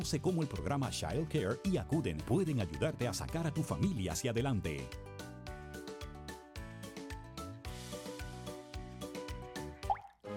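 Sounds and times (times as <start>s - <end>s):
speech: 0.0s - 5.1s
water drops from a roof leak dripping into containers of different sizes: 9.8s - 10.2s.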